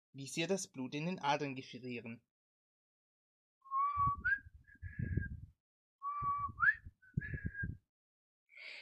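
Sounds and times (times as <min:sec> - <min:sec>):
speech: 0:00.2 - 0:02.3
person whistling a tune over a mobile phone call: 0:03.6 - 0:07.8.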